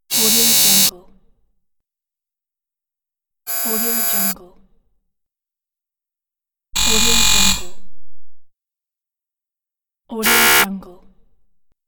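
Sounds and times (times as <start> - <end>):
door buzzer: 0.1 - 0.9, 3.5 - 4.4, 6.8 - 8.0, 10.1 - 10.8.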